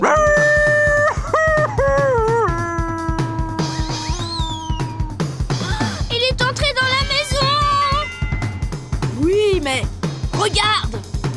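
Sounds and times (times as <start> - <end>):
wolf howling as it plunges down a chimney into a pot of boiling water: 0.0 - 1.1, 1.9 - 5.3
steady thumping rhythmic backdrop: 0.0 - 11.3
high sliding whistle-like cry: 3.6 - 5.2.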